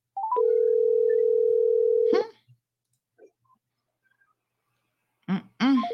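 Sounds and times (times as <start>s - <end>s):
outgoing phone call ringing tone: 0.2s - 2.2s.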